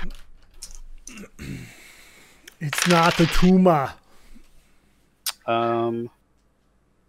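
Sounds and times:
dice rolled for a knife attack roll in a game: 2.5s - 3.6s
speech: 2.6s - 4.0s, 5.5s - 6.2s.

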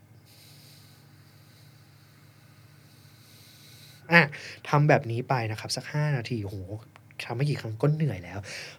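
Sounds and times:
low steady hum: 0.0s - 8.7s
long steady breath pushed out through the nose: 0.2s - 4.6s
speech: 4.1s - 8.7s.

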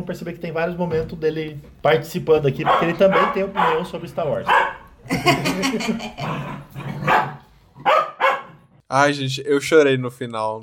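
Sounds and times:
speech: 0.0s - 7.0s, 8.9s - 10.6s
dog barking: 2.6s - 4.9s, 7.0s - 8.6s
laughter: 5.0s - 6.4s.

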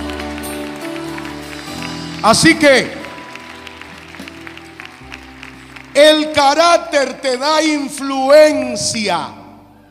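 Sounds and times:
audience applauding: 0.0s - 8.1s
speech: 2.2s - 3.0s, 6.0s - 9.4s
man shouting excitedly: 6.0s - 9.4s.

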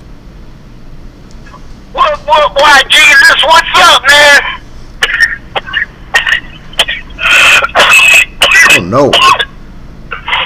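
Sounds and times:
speech: 2.3s - 4.6s, 8.8s - 9.4s
person coughing with raspy coughing fits: 5.0s - 9.5s
throat clearing: 5.0s - 9.5s.

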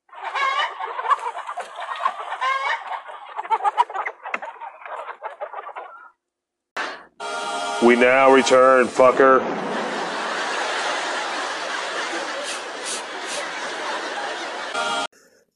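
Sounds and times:
chicken clucking and squawking: 0.0s - 6.2s, 10.3s - 15.1s
speech: 7.8s - 9.7s
laughter: 8.8s - 15.1s.

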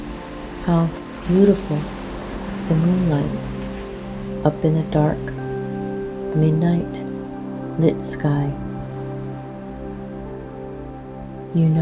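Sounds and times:
ocean water washing gently against the shore of an island: 0.0s - 11.8s
sustained low humming musical drone: 0.0s - 11.8s
speech: 0.7s - 2.0s, 2.7s - 3.7s, 4.4s - 5.3s, 6.3s - 7.1s, 7.8s - 8.6s, 11.6s - 11.8s.

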